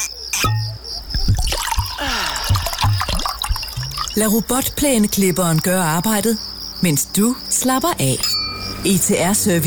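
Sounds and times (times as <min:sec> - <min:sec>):
water drips in limestone mine caves: 0:00.4 - 0:06.2
stream water trickling in underground limestone mine caves at Mønsted: 0:01.1 - 0:05.6
speech: 0:04.2 - 0:09.6.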